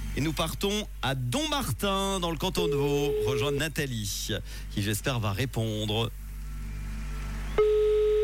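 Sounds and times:
speech: 0:00.2 - 0:06.2
telephone ringback tone on an outgoing call placed from a computer: 0:02.6 - 0:03.6, 0:07.6 - 0:08.2.

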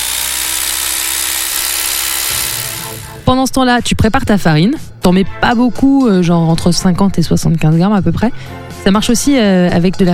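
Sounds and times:
electric mixer whipping egg whites with salt: 0:00.0 - 0:03.3
speech: 0:03.3 - 0:10.1.

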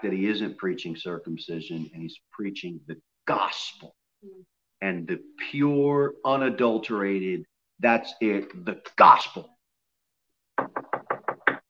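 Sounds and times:
speech: 0:00.0 - 0:09.6
firm knocking on a door: 0:10.6 - 0:11.6.

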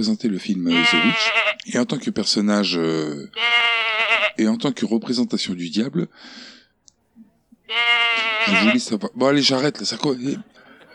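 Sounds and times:
speech: 0:00.0 - 0:06.6, 0:07.7 - 0:10.6
goat bleating: 0:00.7 - 0:01.7, 0:03.3 - 0:04.4, 0:07.7 - 0:09.0.

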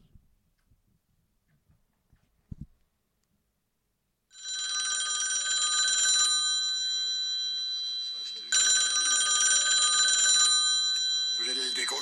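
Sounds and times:
telephone ringing with a bright bell tone: 0:04.3 - 0:11.9.

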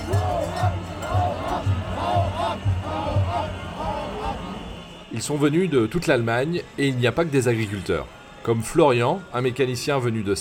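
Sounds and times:
regular low thumping beat: 0:00.0 - 0:04.5
large protesting crowd shouting and chanting in a steady rhythm: 0:00.0 - 0:10.3
speech: 0:05.2 - 0:10.3.

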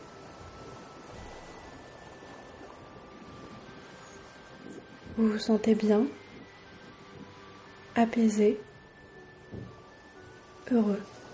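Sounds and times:
wind blowing through palm trees: 0:00.0 - 0:11.3
speech: 0:05.2 - 0:06.2, 0:08.0 - 0:08.7, 0:10.7 - 0:11.2.

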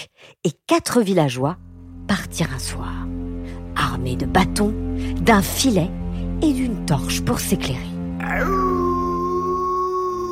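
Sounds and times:
speech: 0:00.4 - 0:03.1, 0:03.8 - 0:08.8
wolf howling: 0:08.2 - 0:10.3.

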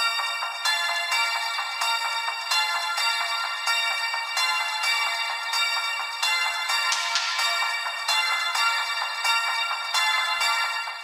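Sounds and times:
thin tinny 1980s-style pop tune echoing in empty mall: 0:00.0 - 0:11.0.

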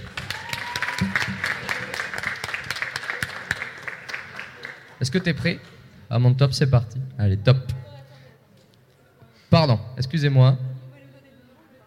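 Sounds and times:
audience applause at a pitch contest event: 0:00.0 - 0:05.0
speech: 0:05.1 - 0:07.6, 0:09.6 - 0:10.7.

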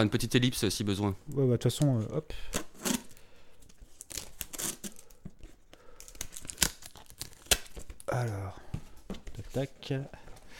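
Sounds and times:
speech: 0:00.0 - 0:02.7, 0:09.6 - 0:10.2
parcel packaging ripped and crinkled: 0:03.8 - 0:05.2, 0:06.0 - 0:08.1.

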